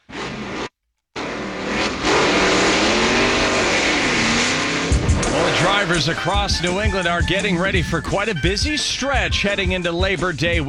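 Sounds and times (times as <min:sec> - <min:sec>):
car engine revving: 0:00.0 - 0:07.8
speech: 0:05.8 - 0:10.6.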